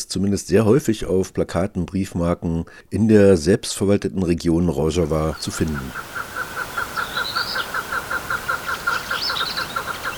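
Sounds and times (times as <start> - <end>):
speech: 0.0 - 6.3
higher chirping bird calls: 5.0 - 10.1
chukar partridge calling repeated chuck notes: 5.2 - 10.1.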